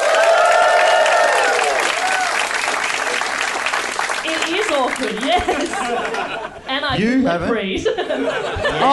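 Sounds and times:
cheers and whoops: 0:00.0 - 0:02.6
live audience applause: 0:00.0 - 0:06.4
speech: 0:05.0 - 0:08.9
laughter: 0:05.2 - 0:06.7, 0:07.8 - 0:08.9.

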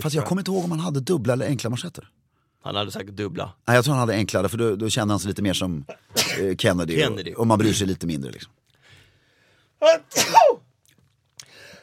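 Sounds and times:
speech: 0:00.0 - 0:08.6, 0:09.8 - 0:10.6
person sneezing: 0:09.8 - 0:10.6.

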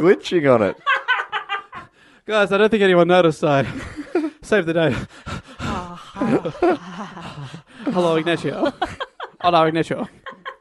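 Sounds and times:
speech: 0:00.0 - 0:00.9, 0:02.3 - 0:05.4, 0:06.2 - 0:08.8, 0:09.4 - 0:10.2
laughter: 0:00.5 - 0:02.0, 0:03.6 - 0:10.6
exaggerated heavy breathing with gasps and groans: 0:04.8 - 0:08.2.

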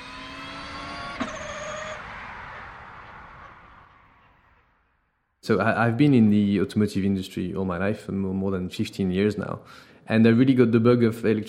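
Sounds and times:
car passing with aerodynamic wind whoosh: 0:00.0 - 0:04.9
thin tonal whine: 0:00.0 - 0:05.3
speech: 0:05.5 - 0:11.4.

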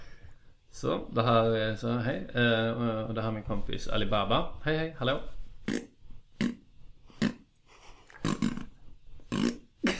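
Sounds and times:
speech: 0:00.8 - 0:05.8
short buzzy fart noises blown with the mouth: 0:05.6 - 0:07.5, 0:08.1 - 0:09.9.

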